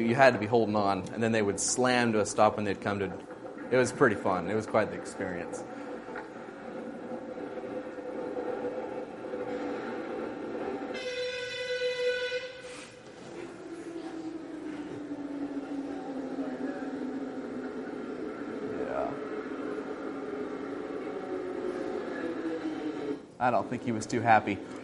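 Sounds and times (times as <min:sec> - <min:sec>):
speech: 0:00.0 - 0:05.8, 0:23.4 - 0:24.8
metro train roaring through a tunnel: 0:00.0 - 0:24.8
brief tonal metro train horn blast: 0:10.8 - 0:13.0.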